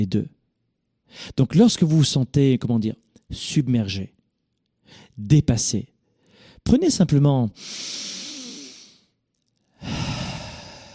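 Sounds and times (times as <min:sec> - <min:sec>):
speech: 0:00.0 - 0:00.3, 0:01.1 - 0:04.2, 0:04.9 - 0:05.9, 0:06.6 - 0:08.2
deep breath in and out: 0:04.8 - 0:05.2, 0:06.0 - 0:06.6, 0:07.6 - 0:10.9.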